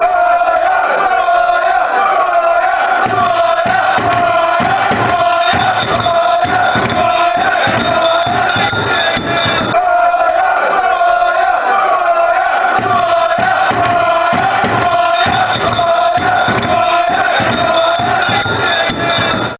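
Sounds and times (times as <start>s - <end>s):
people chanting: 0.0s - 19.5s
bells ringing: 5.2s - 9.8s, 14.6s - 19.5s.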